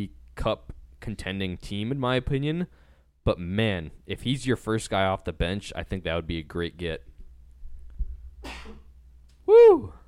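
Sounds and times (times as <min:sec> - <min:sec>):
speech: 0:00.0 - 0:07.1, 0:09.6 - 0:10.0
person sneezing: 0:08.4 - 0:08.9.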